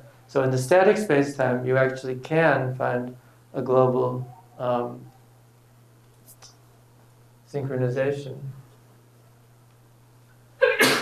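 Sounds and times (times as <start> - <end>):
faint steady hum: 0.0 - 11.0
speech: 0.3 - 5.1, 7.5 - 8.6
person sneezing: 10.6 - 11.0.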